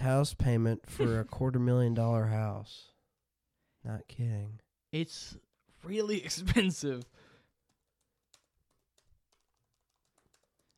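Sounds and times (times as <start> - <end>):
speech: 0.0 - 2.9, 3.8 - 7.2
typing a search on a computer keyboard: 7.0 - 10.7.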